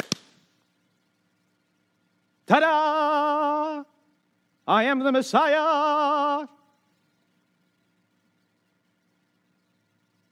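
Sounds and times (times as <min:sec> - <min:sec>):
firework explosion with rumble: 0:00.0 - 0:00.4
speech: 0:02.5 - 0:02.9, 0:04.7 - 0:06.6.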